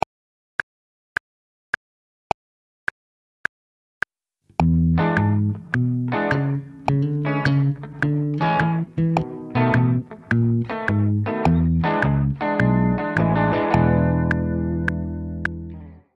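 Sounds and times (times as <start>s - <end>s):
jazz rhythm improvisation: 4.6s - 15.8s.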